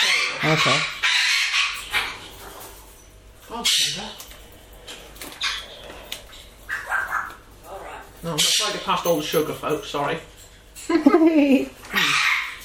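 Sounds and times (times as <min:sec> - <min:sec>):
birds squawking: 0:00.0 - 0:02.9, 0:03.5 - 0:09.1, 0:11.8 - 0:12.6
speech: 0:00.4 - 0:00.9, 0:03.6 - 0:04.2, 0:08.2 - 0:10.3, 0:10.9 - 0:12.1.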